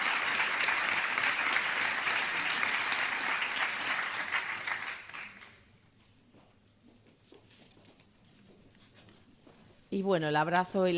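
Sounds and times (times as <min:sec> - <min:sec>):
crowd applauding new graduates in a large room: 0:00.0 - 0:05.7
speech: 0:10.0 - 0:10.9.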